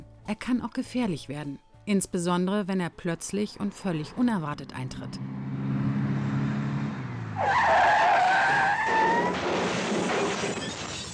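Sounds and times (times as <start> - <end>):
speech: 0.3 - 5.4, 7.4 - 7.9
car engine droning low: 3.5 - 9.6
car tires shrieking in a skid: 5.2 - 11.1
car crashing into the end of a traffic jam: 7.4 - 11.1.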